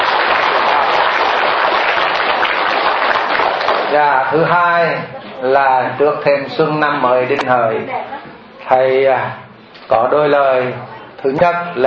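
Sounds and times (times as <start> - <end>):
audience applauding: 0.0 - 4.2
speech: 3.9 - 8.1, 8.7 - 11.8.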